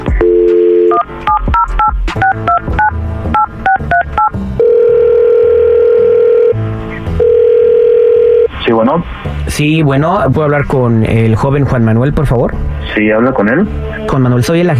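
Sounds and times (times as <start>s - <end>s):
telephone ringing tone: 0.2s - 6.6s, 7.2s - 8.5s
telephone touch-tone dialing beeps: 0.2s - 6.6s
speech: 8.8s - 14.7s.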